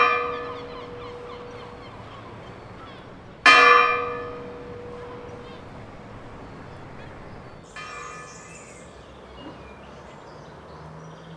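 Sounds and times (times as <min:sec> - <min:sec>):
church bell ringing: 0:00.0 - 0:08.9.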